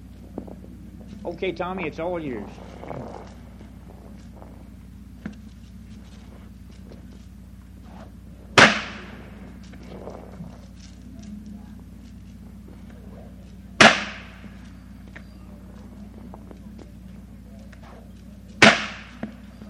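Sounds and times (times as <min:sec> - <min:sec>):
low steady hum: 0:00.0 - 0:19.6
speech: 0:01.2 - 0:03.2
bullwhip cracking: 0:08.6 - 0:09.4, 0:13.8 - 0:14.5, 0:17.9 - 0:19.4.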